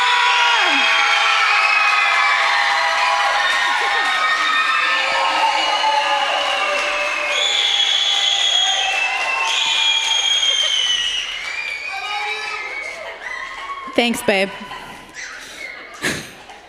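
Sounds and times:
crowd at a church service cheering and screaming in welcome: 0.0s - 16.6s
crowd clapping at a church service: 0.0s - 16.6s
laughter: 3.1s - 5.7s, 7.8s - 11.2s, 12.2s - 16.6s
speech: 14.0s - 14.8s.

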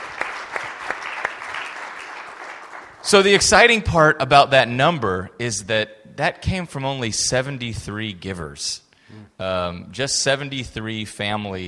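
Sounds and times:
audience applause: 0.0s - 3.0s
speech: 3.0s - 11.6s.

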